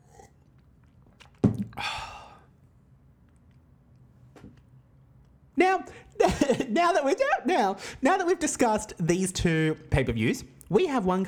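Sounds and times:
person sipping a drink: 0:00.0 - 0:02.7
breathy satisfied exhale: 0:01.8 - 0:02.5
speech: 0:05.6 - 0:11.2.

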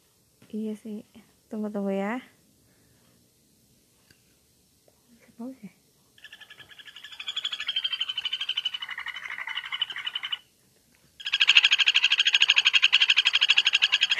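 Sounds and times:
speech: 0:00.5 - 0:02.4, 0:05.4 - 0:05.8
kuntilanak bird giggle-like trilling call: 0:06.2 - 0:10.4, 0:11.2 - 0:14.1.

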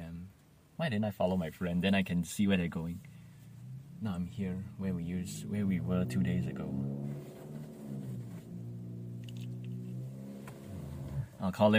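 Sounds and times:
speech: 0:00.8 - 0:03.1, 0:04.0 - 0:07.2, 0:11.4 - 0:11.7
pickup truck engine rumbling as it pulls up and parks: 0:02.4 - 0:11.4.

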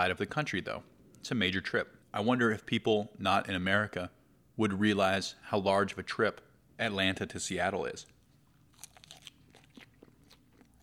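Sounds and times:
speech: 0:00.0 - 0:08.1
low hum: 0:00.0 - 0:10.8
crunchy chewing of food: 0:08.1 - 0:10.8.

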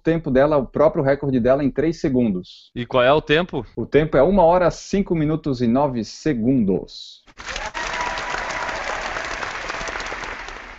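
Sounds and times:
speech: 0:00.0 - 0:07.5
applause from a group of people: 0:07.4 - 0:10.7.

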